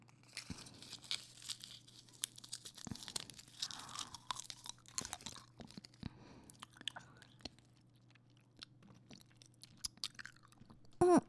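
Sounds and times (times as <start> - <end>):
person chewing and crunching on a small sweet fruit or candy: 0.0 - 11.1.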